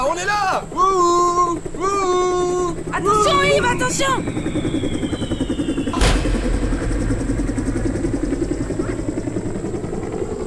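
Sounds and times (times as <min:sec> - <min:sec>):
helicopter rotor chopping: 0:00.0 - 0:10.4
speech: 0:00.2 - 0:01.9, 0:03.0 - 0:05.4
sharp burst of noise: 0:03.8 - 0:09.8.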